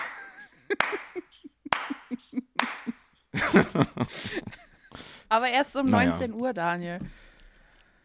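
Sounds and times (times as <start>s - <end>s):
hands clapping: 0.0s - 3.1s
laughter: 0.0s - 4.9s
speech: 3.5s - 7.2s.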